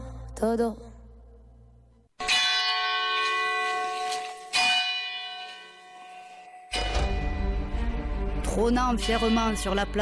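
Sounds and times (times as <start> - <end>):
speech: 0.4 - 0.9, 8.6 - 10.0
large clock tower bell tolling: 2.2 - 8.1, 9.0 - 10.0.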